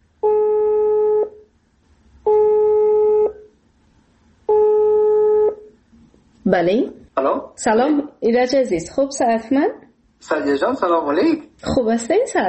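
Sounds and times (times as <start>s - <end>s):
outgoing phone call electronic ring tones: 0.2s - 1.4s, 2.3s - 3.5s, 4.5s - 5.7s
speech: 6.5s - 12.4s.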